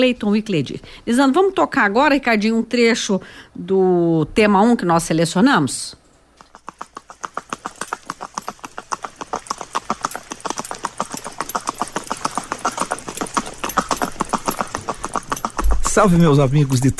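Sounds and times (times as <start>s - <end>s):
speech: 0.0s - 6.0s, 16.0s - 16.9s
horse hooves clip-clopping at a marching gait: 6.4s - 16.9s.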